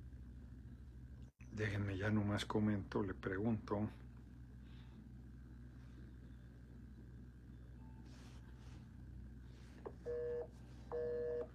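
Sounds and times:
low hum: 0.0 - 11.5
speech: 1.5 - 4.1
telephone ringing tone of a call being placed: 10.0 - 11.5.

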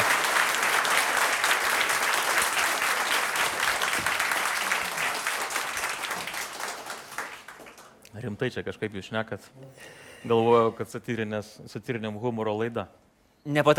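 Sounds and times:
audience applause welcoming a guest onto a show: 0.0 - 8.0
speech: 8.2 - 13.7.

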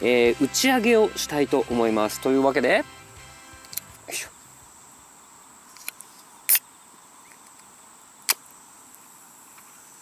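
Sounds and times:
speech: 0.0 - 3.0
drink can opening with metallic snap and hiss of escaping gas: 3.6 - 4.0.

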